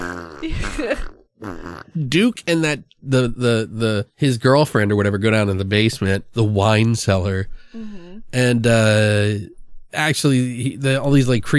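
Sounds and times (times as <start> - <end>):
person imitating a fart with their mouth: 0.0 - 2.0
speech: 0.4 - 11.5.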